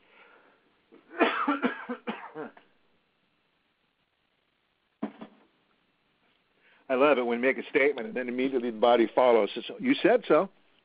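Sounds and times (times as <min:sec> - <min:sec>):
harsh wet coughing: 0:01.1 - 0:02.6
speech: 0:06.9 - 0:10.6.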